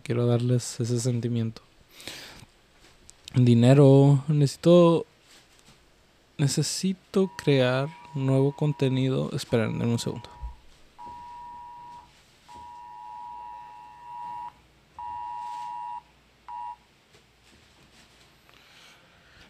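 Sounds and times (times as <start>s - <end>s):
speech: 0.0s - 2.2s, 3.4s - 5.1s, 6.4s - 10.4s
Amber Alert emergency alarm on phone: 7.2s - 16.8s.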